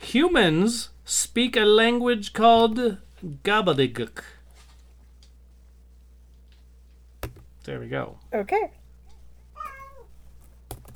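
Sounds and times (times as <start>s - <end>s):
low steady hum: 0.0s - 10.9s
speech: 0.1s - 4.4s, 7.7s - 8.8s
cat meowing: 9.5s - 10.2s.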